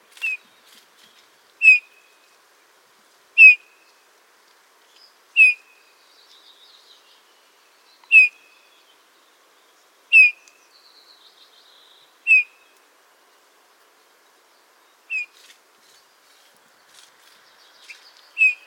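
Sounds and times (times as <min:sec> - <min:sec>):
Eurasian bullfinch Pyrrhula pyrrhula piping whistle calls: 0:01.6 - 0:01.9, 0:05.4 - 0:05.6, 0:08.1 - 0:08.4, 0:10.1 - 0:10.4, 0:12.3 - 0:12.6, 0:15.1 - 0:15.4, 0:17.8 - 0:18.6
faint twittering from other birds: 0:04.9 - 0:12.8, 0:14.6 - 0:18.6.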